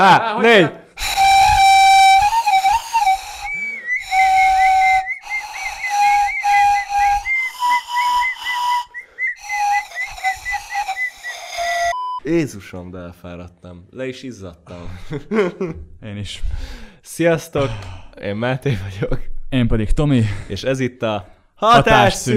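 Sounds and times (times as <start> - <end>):
speech: 0.0 - 0.8, 12.3 - 22.3
shrill whistle playing a wavering tune as intro music: 1.0 - 12.2.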